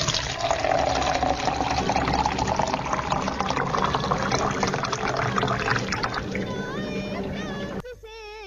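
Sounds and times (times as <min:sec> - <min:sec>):
water being fetched and poured: 0:00.0 - 0:07.7.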